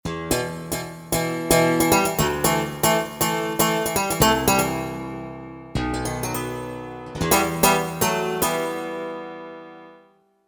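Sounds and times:
synthesizer Strat factory patch: 0.3 - 5.2, 6.0 - 9.3.

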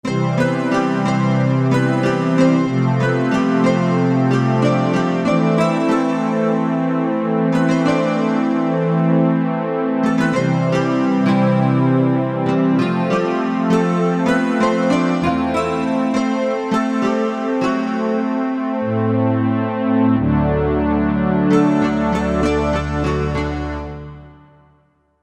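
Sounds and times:
12-string guitar: 0.0 - 8.9, 10.0 - 24.5.

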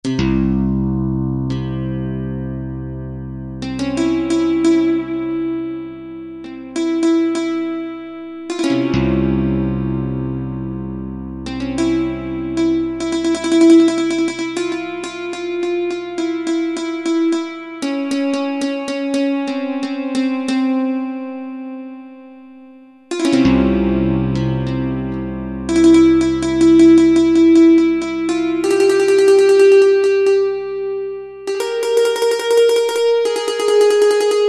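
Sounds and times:
oud XG voice: 0.0 - 34.4.

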